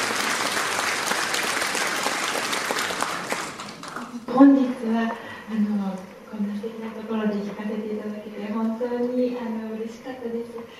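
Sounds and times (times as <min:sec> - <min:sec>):
audience applause: 0:00.0 - 0:04.2
speech: 0:04.4 - 0:10.7.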